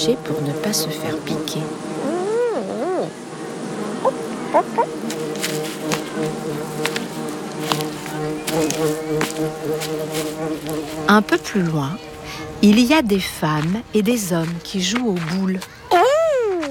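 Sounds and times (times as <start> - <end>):
speech: 0.0 - 1.9, 4.5 - 5.7, 8.8 - 15.8
bee flying past: 0.0 - 12.8
bees buzzing around a hive: 0.0 - 14.5
small ticks and taps: 5.0 - 10.0.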